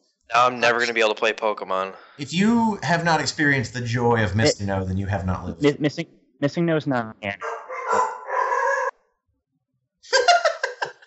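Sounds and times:
speech: 0:00.3 - 0:08.1
laughter: 0:00.4 - 0:01.6, 0:02.2 - 0:05.8, 0:10.1 - 0:11.0
dog barking: 0:07.4 - 0:08.9.

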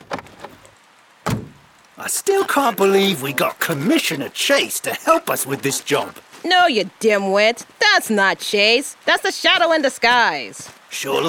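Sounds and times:
heavy door thunk as it swings: 0:01.2 - 0:01.7
door latch clicks: 0:01.3 - 0:01.6
speech: 0:02.0 - 0:11.2.

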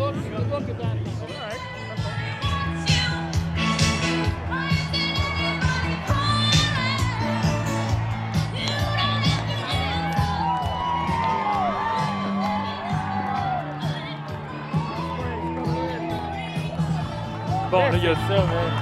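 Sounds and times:
loud music at a rally: 0:00.8 - 0:18.8
large rally crowd cheering and shouting: 0:01.2 - 0:18.8
speech: 0:17.9 - 0:18.8.

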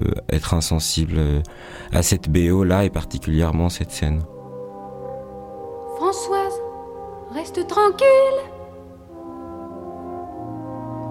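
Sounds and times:
speech: 0:00.3 - 0:04.4, 0:07.4 - 0:08.5
horn honking: 0:04.3 - 0:11.0.

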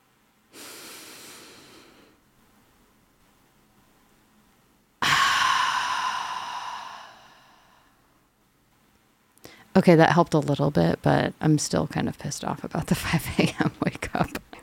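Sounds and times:
deep slow breath during a morning grounding exercise: 0:00.5 - 0:02.2, 0:05.0 - 0:08.2
speech: 0:09.8 - 0:14.4.

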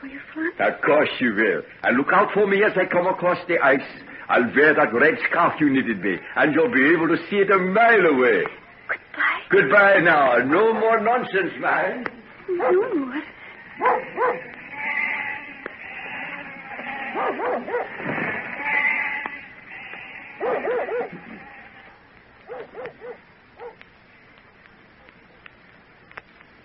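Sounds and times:
speech: 0:00.0 - 0:14.5
dog barking in short bursts: 0:12.6 - 0:13.0, 0:13.8 - 0:14.5, 0:17.1 - 0:18.0, 0:20.4 - 0:21.4, 0:22.4 - 0:23.8
flock of sheep bleating: 0:13.8 - 0:17.8, 0:18.4 - 0:22.0.

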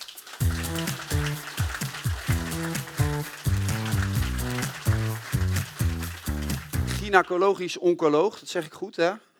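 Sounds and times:
crowd clapping: 0:00.0 - 0:07.3
bright band music with punchy chords: 0:00.4 - 0:07.2
speech: 0:07.1 - 0:09.3.

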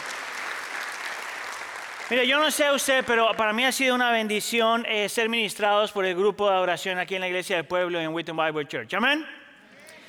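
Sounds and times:
audience clapping: 0:00.0 - 0:03.8
speech: 0:02.1 - 0:09.4.

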